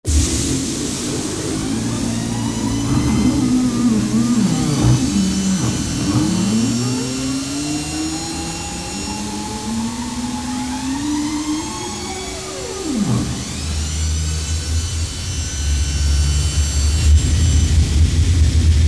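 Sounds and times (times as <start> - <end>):
spaceship startup: 0.1 - 18.7.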